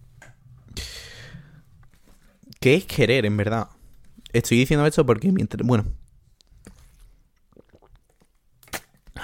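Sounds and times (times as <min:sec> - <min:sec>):
breathy gasp after drinking: 0:00.8 - 0:01.6
speech: 0:02.6 - 0:06.0
person drinking water, gulping: 0:07.4 - 0:09.2.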